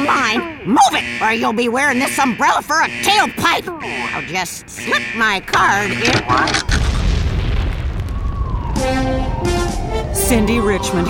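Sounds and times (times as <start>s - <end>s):
speech: 0.3s - 6.8s, 8.8s - 11.0s
loud explosion from an ATM: 6.6s - 10.2s.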